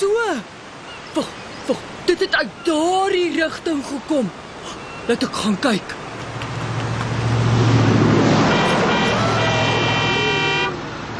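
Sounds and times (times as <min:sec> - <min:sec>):
road noise: 0:00.0 - 0:11.1
speech: 0:01.2 - 0:06.0
truck rumbling as it drives past on a street: 0:06.3 - 0:11.1
truck horn blast: 0:08.4 - 0:10.8.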